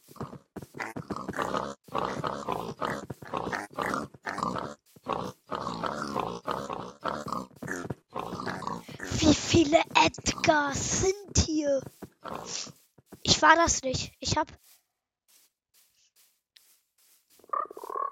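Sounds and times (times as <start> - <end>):
video game pigs grunting: 0.0 - 12.8, 17.4 - 18.0
speech: 9.6 - 11.9, 13.4 - 14.6.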